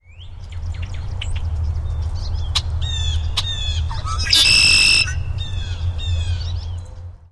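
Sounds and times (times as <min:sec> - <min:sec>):
blackbird singing beautifully: 0:00.0 - 0:07.1
blackbird giving a wild scream: 0:03.8 - 0:05.5.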